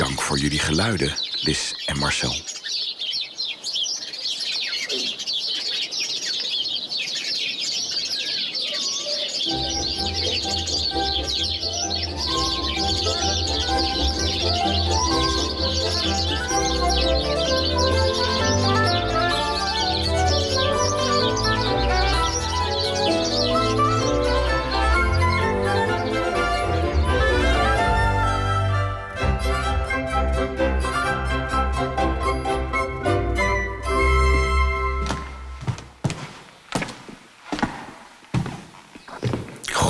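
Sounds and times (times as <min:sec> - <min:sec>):
house sparrows twittering and chirping: 0:00.0 - 0:39.8
speech: 0:00.3 - 0:02.6.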